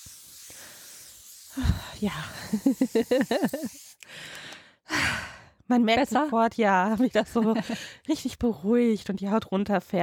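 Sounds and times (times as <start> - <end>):
thermal water misted from a nozzle onto hot skin: 0.0 - 4.0
brief low breathy puff: 0.0 - 4.7
speech: 1.6 - 5.1, 5.7 - 10.0
laughter: 2.4 - 3.8.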